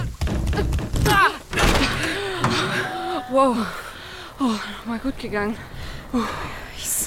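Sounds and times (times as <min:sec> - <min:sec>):
door shoved hard, heavy thuds and rattles: 0:00.0 - 0:03.0
speech: 0:03.4 - 0:07.0.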